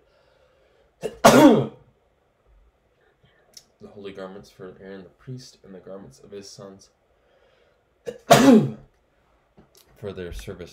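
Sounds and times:
sneeze: 1.0 - 1.8, 8.1 - 8.9
speech: 4.0 - 7.0, 8.0 - 8.8, 10.0 - 10.7.

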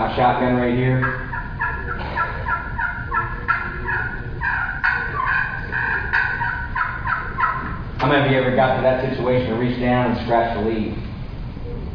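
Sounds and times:
speech: 0.1 - 1.3, 8.0 - 11.0
turkey clucks and purrs played on a slate friction call: 1.0 - 8.0.

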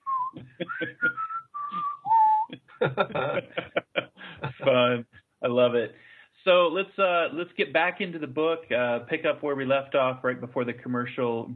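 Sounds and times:
person whistling a tune: 0.0 - 2.6
laughter: 0.4 - 1.8, 2.5 - 5.8
voice-like sounds: 0.4 - 11.5
speech: 0.6 - 1.2, 2.9 - 3.7, 4.7 - 11.5.

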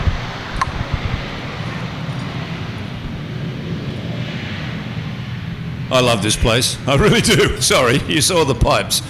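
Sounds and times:
jet aircraft taking off: 0.0 - 9.0
speech: 5.9 - 9.0.

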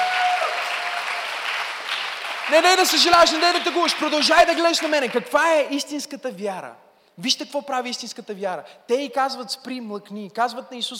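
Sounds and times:
crowd applauding in a large room: 0.0 - 5.4
speech: 2.5 - 10.9.

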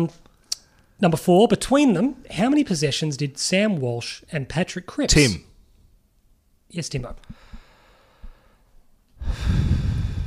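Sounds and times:
speech: 0.0 - 0.2, 1.0 - 5.5, 6.7 - 7.5
heavy breathing into microphone: 7.3 - 10.2.

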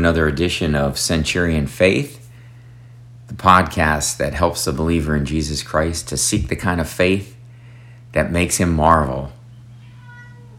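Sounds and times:
speech: 0.0 - 2.2, 3.3 - 7.4, 8.1 - 9.4
house cat meowing: 9.7 - 10.5.

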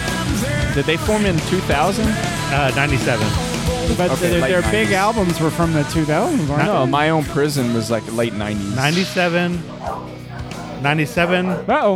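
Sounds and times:
speech: 0.8 - 10.2, 10.8 - 11.9
dog barking: 9.1 - 11.9.

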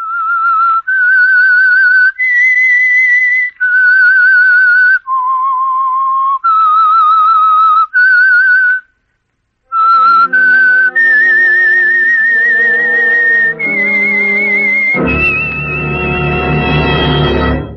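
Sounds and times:
whistled theme melody: 0.0 - 8.9, 9.7 - 17.7
instrumental music: 9.7 - 17.7.

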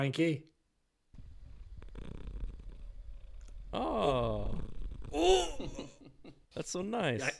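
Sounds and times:
speech: 0.0 - 0.5, 3.7 - 5.9, 6.6 - 7.3
cat purring with a low continuous rumble: 1.2 - 6.8
laughter: 5.2 - 6.9.

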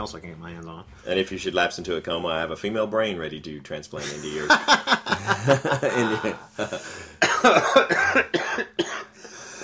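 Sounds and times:
speech: 0.0 - 8.8
laughter: 4.0 - 7.0
loud harsh coughing fit: 5.1 - 9.6
wheezy gasps: 6.6 - 7.2, 9.1 - 9.6.

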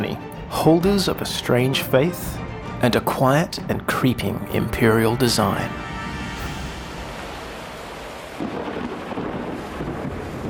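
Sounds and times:
speech: 0.6 - 5.8
deep thunder rumbling on a storm-racked island coast: 5.5 - 10.4
heavy rain on a storm-racked island coast: 6.1 - 10.4.

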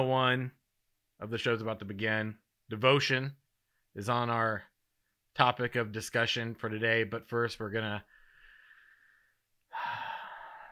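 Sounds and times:
speech: 0.0 - 0.6, 1.2 - 3.4, 4.0 - 4.7, 5.4 - 8.2
breathy exhalations: 8.1 - 10.7.

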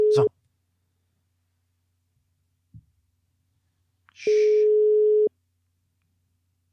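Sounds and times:
speech: 0.2 - 0.4
ringback tone from an outgoing phone call: 4.4 - 5.3.

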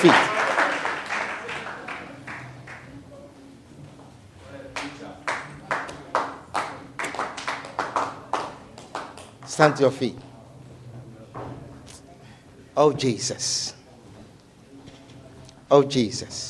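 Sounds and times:
speech: 0.0 - 0.3, 9.6 - 10.3, 12.8 - 13.8, 15.7 - 16.4
church audience clapping hands rhythmically: 0.0 - 3.0, 4.7 - 10.0.

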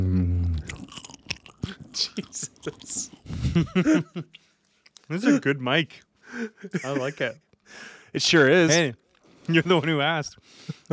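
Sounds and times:
person chewing pork tenderloin: 0.0 - 5.1
speech: 1.7 - 3.0, 3.6 - 4.4, 5.1 - 10.9
laughter: 3.3 - 4.4, 6.3 - 7.4.

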